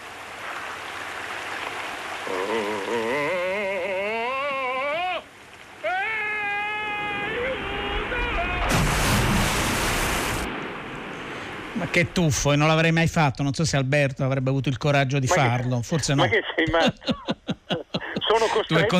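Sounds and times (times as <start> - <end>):
rushing waterfall water: 0.0 - 13.5
speech: 2.3 - 3.0, 11.9 - 17.4, 18.4 - 18.9
laughter: 15.3 - 18.9.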